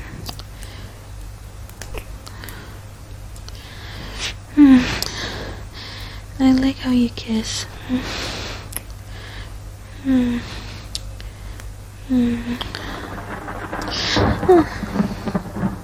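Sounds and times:
rain: 0.0 - 15.8
speech: 6.4 - 8.3, 10.0 - 10.6, 12.1 - 12.9, 14.5 - 14.9
thunder rumbling: 12.0 - 15.8.

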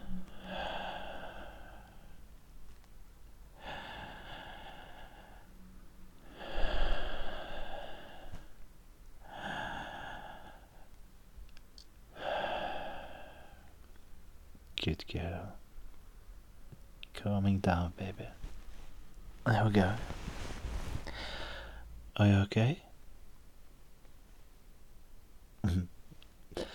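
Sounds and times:
slow breathing in and out: 0.0 - 2.2, 3.6 - 5.6, 6.2 - 8.6, 9.2 - 11.0, 12.1 - 13.8, 18.3 - 22.0
speech: 14.8 - 15.6, 17.2 - 18.4, 19.4 - 20.2, 22.2 - 22.8.

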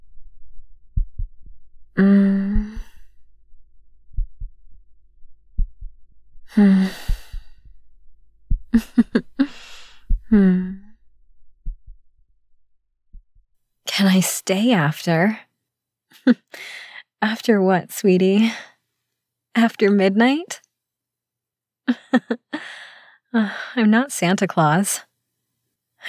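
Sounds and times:
person's slow heartbeat heard through a chest: 0.0 - 12.1
person sighing: 2.0 - 3.0, 6.5 - 7.5, 8.8 - 10.9
heavy breathing: 6.5 - 7.7, 8.8 - 10.8, 16.5 - 17.1, 22.5 - 23.8
speech: 6.6 - 7.1, 14.2 - 15.5, 16.2 - 18.7, 19.6 - 20.6, 21.9 - 25.1.

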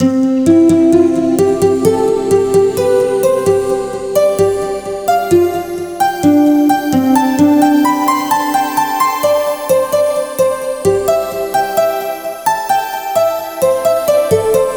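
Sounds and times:
harp music: 0.0 - 14.7.

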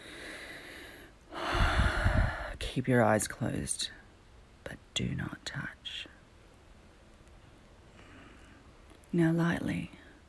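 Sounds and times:
breath blown out: 0.0 - 2.6
faint steady hiss: 0.0 - 10.2
speech: 2.8 - 4.0, 5.0 - 6.2, 9.1 - 10.0.

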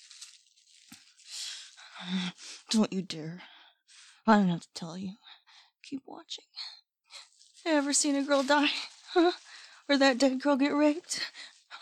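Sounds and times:
plastic bag crinkling and rustling: 0.0 - 2.6, 7.1 - 11.8
speech: 2.0 - 3.5, 4.2 - 5.2, 5.9 - 6.7, 7.6 - 11.8.

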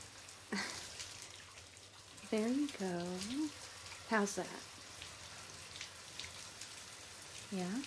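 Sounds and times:
warm water splashing as someone gets into a bath: 0.0 - 7.8
speech: 2.3 - 4.7, 7.5 - 7.8.

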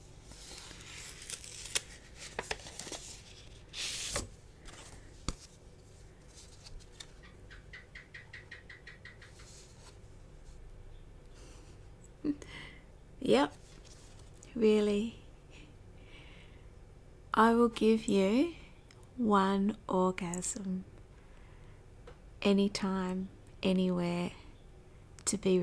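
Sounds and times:
greeting card paper rustling: 0.0 - 7.3, 13.5 - 14.4
soft handling noises of a greeting card: 0.0 - 7.3, 13.4 - 14.5
paper tearing and crinkling as a greeting card is opened: 0.2 - 5.4
speech: 13.3 - 13.6, 14.6 - 15.2, 17.4 - 18.6, 19.2 - 20.9, 22.4 - 24.4, 25.3 - 25.6.

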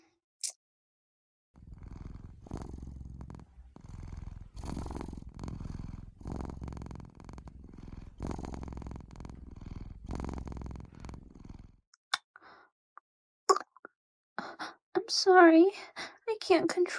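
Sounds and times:
person imitating cat purring: 1.6 - 11.8
speech: 15.1 - 16.9.

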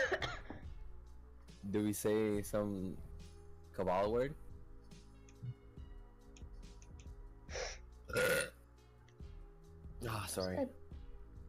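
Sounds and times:
speech: 1.6 - 3.1, 3.8 - 4.4, 10.3 - 10.8
loud gurgling burp: 8.1 - 8.6.

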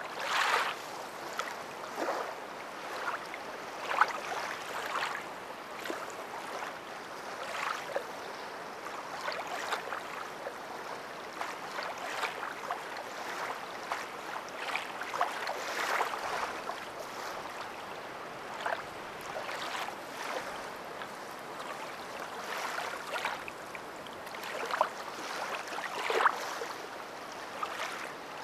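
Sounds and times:
swimming in the ocean: 0.1 - 28.4.

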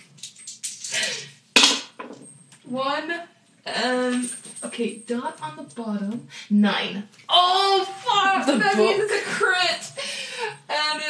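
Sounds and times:
dice clattering onto a hard surface during a tabletop game: 0.2 - 1.1
speech: 2.7 - 11.0
laughter: 8.0 - 10.7.

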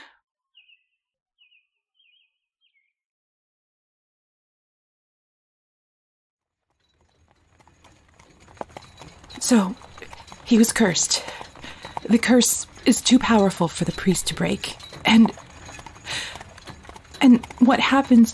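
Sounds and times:
hooves of a horse pulling a carriage clip-clopping: 6.6 - 18.3
horse-drawn carriage rolling rattle: 6.7 - 18.3
speech: 9.5 - 9.8, 10.5 - 11.4, 12.1 - 15.4, 17.2 - 18.3.

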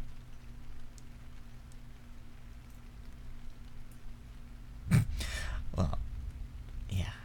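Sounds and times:
light chilly rain falling: 0.0 - 7.2
low hum: 2.4 - 7.2.

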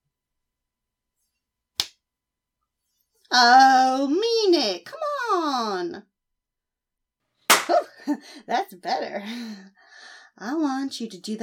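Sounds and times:
slap on skin: 1.8 - 2.0, 7.5 - 7.8
speech: 3.3 - 6.1, 8.2 - 9.8, 10.4 - 11.4.

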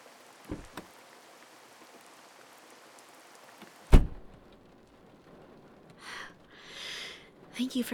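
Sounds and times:
heavy rain falling outside: 0.0 - 7.9
car door shutting: 0.5 - 0.8, 3.9 - 4.3
speech: 7.6 - 7.9.

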